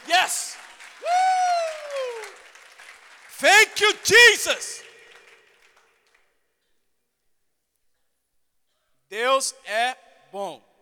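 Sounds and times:
crowd clapping: 0.0s - 6.4s
loud sustained whoop falling in pitch: 1.0s - 2.3s
speech: 3.4s - 4.8s, 9.4s - 10.7s.

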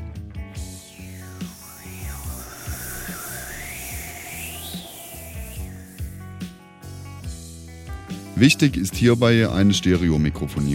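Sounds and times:
breathy mouth hiss imitating wind: 0.6s - 7.1s
speech: 8.4s - 10.7s.

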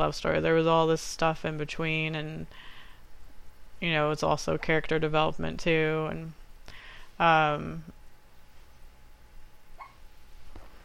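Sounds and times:
speech: 0.0s - 2.7s, 3.8s - 6.4s, 7.2s - 8.0s
quiet room hum: 0.0s - 10.8s
puppy whimpering while dreaming: 9.8s - 10.0s.

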